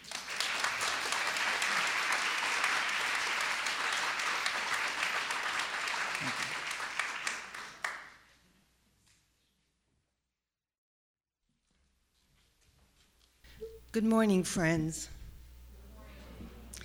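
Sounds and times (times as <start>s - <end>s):
audience applause: 0.0s - 8.2s
speech: 14.0s - 15.2s.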